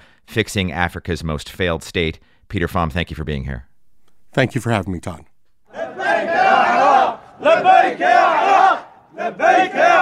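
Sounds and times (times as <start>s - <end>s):
speech: 0.4s - 3.7s, 4.3s - 5.3s, 7.4s - 10.0s
crowd of Iraqi government troops cheering and chanting in Kirkuk: 5.7s - 10.0s.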